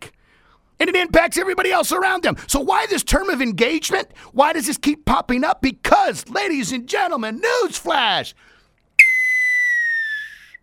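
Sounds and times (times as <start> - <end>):
speech: 0.8 - 8.5
little red whistle being blown: 9.0 - 10.6.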